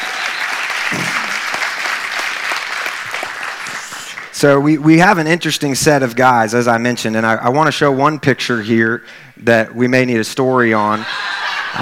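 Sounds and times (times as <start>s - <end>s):
audience applause: 0.0s - 4.3s
laughter: 0.8s - 1.6s, 10.7s - 11.8s
speech: 4.4s - 11.8s.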